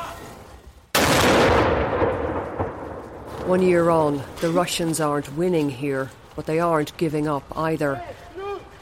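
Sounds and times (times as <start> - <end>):
mortar round fired by a mortar team in a battlefield town: 0.9 - 3.3
speech: 3.5 - 8.2.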